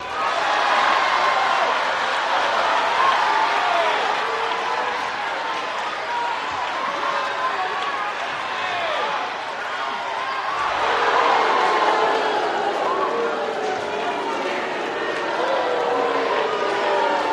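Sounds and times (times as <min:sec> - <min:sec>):
crowd walla at boxing: 0:00.0 - 0:17.3.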